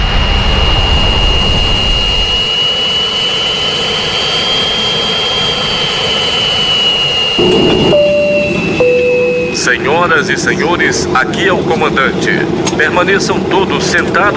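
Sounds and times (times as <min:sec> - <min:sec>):
jet airliner engines at full power for takeoff: 0:00.0 - 0:14.3
high sustained whine of jet airliner engines: 0:00.2 - 0:11.4
speech: 0:09.8 - 0:14.3.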